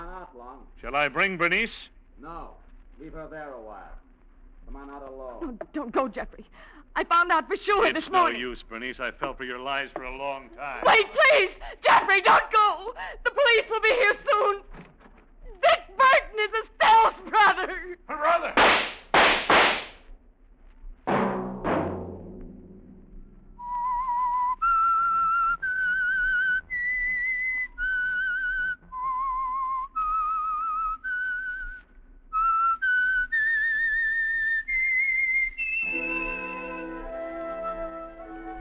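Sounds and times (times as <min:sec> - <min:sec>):
speech: 0:00.4 - 0:04.1, 0:04.7 - 0:14.9, 0:15.6 - 0:19.0
sharp loud cracks: 0:18.4 - 0:20.1
lone whistler whistling a slow theme tune: 0:23.6 - 0:31.8, 0:32.4 - 0:38.2
swelling orchestral chord: 0:35.9 - 0:38.5.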